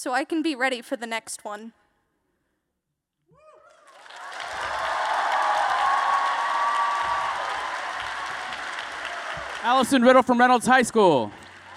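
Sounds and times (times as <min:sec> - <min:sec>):
speech: 0:00.0 - 0:01.8, 0:09.6 - 0:11.4
audience cheers and whoops: 0:03.4 - 0:09.7
large audience applause at a poetry competition: 0:03.7 - 0:11.7.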